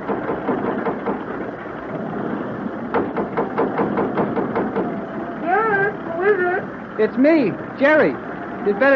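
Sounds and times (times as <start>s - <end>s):
heavy knocking thuds from straining ship engines: 0.0s - 1.5s, 2.9s - 5.0s
ship engines straining in rough water during a storm: 0.0s - 8.9s
speech: 7.0s - 8.9s.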